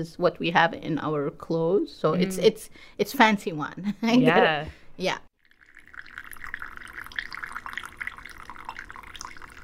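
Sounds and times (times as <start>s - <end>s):
speech: 0.0s - 5.3s
coffee poured from high into a small handleless finjan cup: 5.4s - 9.6s.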